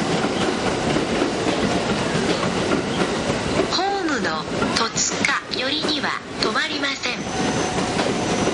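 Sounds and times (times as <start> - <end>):
commuter train rumbling along a station platform: 0.0 - 8.5
commuter train wheels clacking over the rails: 0.0 - 8.5.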